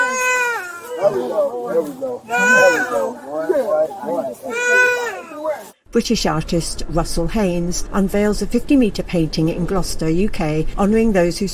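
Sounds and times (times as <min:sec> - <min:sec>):
infant crying with strained wailing: 0:00.0 - 0:01.3, 0:02.3 - 0:03.2, 0:04.5 - 0:05.6
speech: 0:01.0 - 0:11.5.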